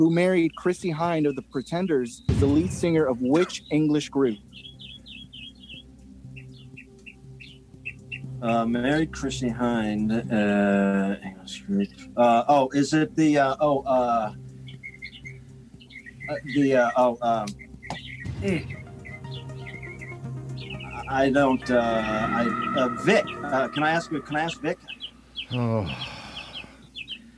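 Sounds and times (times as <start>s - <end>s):
speech: 0.0s - 4.7s, 8.4s - 14.4s, 16.3s - 17.6s, 18.4s - 18.8s, 21.1s - 26.2s
birds chirping: 0.0s - 10.5s, 11.1s - 12.3s, 13.2s - 27.3s.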